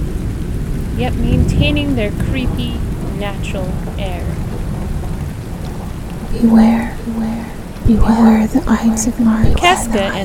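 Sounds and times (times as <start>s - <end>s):
heavy rain: 0.0s - 10.2s
low droning rumble: 0.0s - 10.2s
wind: 0.0s - 10.2s
speech: 1.0s - 4.4s, 6.3s - 10.2s.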